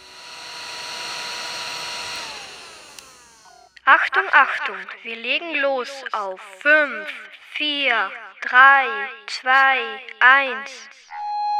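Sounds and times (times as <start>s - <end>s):
hair dryer blowing: 0.0s - 3.8s
speech: 3.9s - 11.2s.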